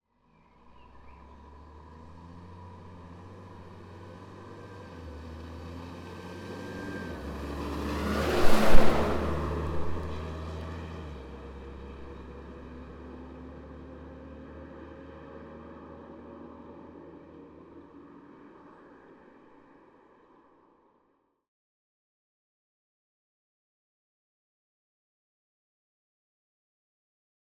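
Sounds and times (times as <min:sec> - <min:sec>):
1992 Volvo F12 truck passing by: 0:00.6 - 0:20.1.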